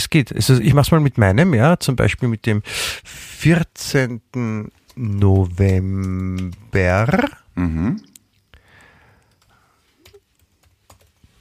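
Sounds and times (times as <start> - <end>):
speech: 0.0 - 8.1
typing on a computer keyboard: 4.7 - 7.2, 8.7 - 11.3.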